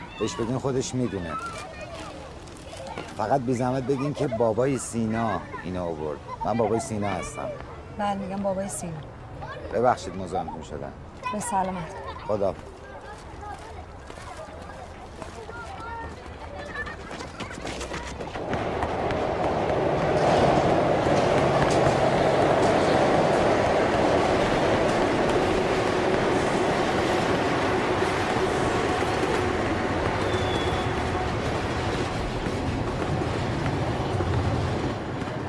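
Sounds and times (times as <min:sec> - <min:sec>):
speech: 0:00.2 - 0:01.8, 0:03.2 - 0:09.1, 0:09.7 - 0:12.7
train rumbling through a railway station: 0:17.9 - 0:35.4
faint high squeal: 0:30.2 - 0:31.0.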